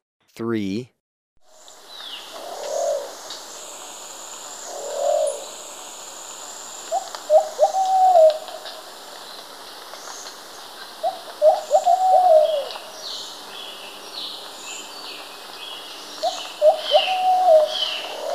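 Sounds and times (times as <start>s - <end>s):
speech: 0.4s - 1.0s
plumbeous pigeon giving soft hooting coos in Ecuador: 2.3s - 3.2s, 4.6s - 5.6s, 6.9s - 8.6s, 11.0s - 12.8s, 16.2s - 18.3s.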